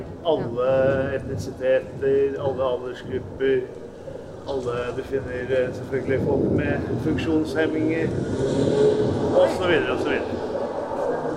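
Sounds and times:
recorded street traffic rumble played as a sound installation: 0:00.0 - 0:11.3
speech: 0:00.2 - 0:03.9, 0:04.5 - 0:10.4
cars passing with engines humming: 0:03.8 - 0:11.3.

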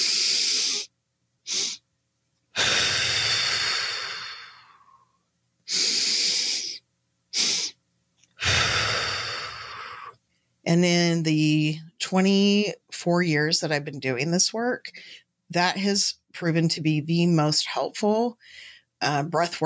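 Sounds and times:
physiological sigh with double inhalation and forceful exhalation: 0:00.0 - 0:00.9, 0:01.5 - 0:01.8, 0:02.6 - 0:07.8, 0:08.4 - 0:10.2
speech: 0:10.7 - 0:19.6.

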